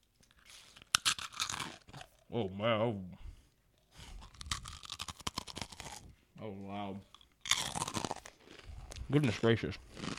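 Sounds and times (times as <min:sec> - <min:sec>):
person biting and chewing a crisp cookie: 0:00.0 - 0:02.3, 0:04.0 - 0:06.2, 0:07.1 - 0:10.1
speech: 0:02.3 - 0:03.2, 0:06.5 - 0:07.1, 0:09.1 - 0:09.9.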